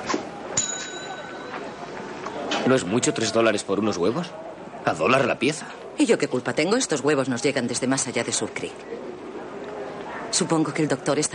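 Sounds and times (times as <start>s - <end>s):
faint noise: 0.0s - 11.3s
bell rung on a shop counter: 0.6s - 1.8s
speech: 2.7s - 9.1s, 10.3s - 11.3s.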